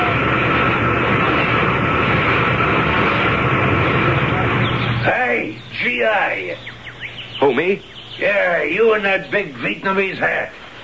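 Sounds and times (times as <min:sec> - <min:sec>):
large helicopter engine and rotor noise: 0:00.0 - 0:10.4
speech: 0:07.6 - 0:10.6.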